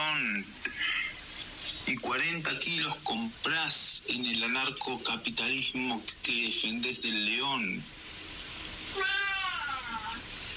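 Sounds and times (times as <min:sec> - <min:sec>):
faint hiss: 0:00.0 - 0:10.5
speech: 0:01.9 - 0:08.0
cat meowing: 0:09.0 - 0:10.2.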